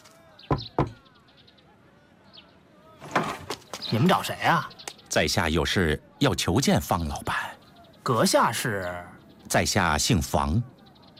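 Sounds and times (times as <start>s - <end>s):
knocking on the wooden door of a residence: 0.5s - 1.0s
speech: 3.9s - 7.4s, 8.0s - 10.7s.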